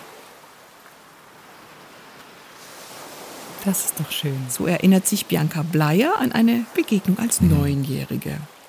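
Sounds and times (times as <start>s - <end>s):
ocean waves breaking on a beach: 1.4s - 7.9s
speech: 3.6s - 8.6s.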